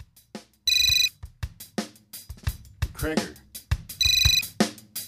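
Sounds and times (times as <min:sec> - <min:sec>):
phone ringtone: 0:00.7 - 0:01.1, 0:04.0 - 0:04.5
speech: 0:03.0 - 0:03.4.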